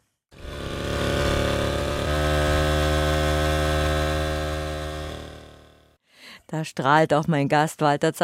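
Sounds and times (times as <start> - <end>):
small bicycle auxiliary motor running: 0.3 - 6.0
speech: 6.5 - 8.2.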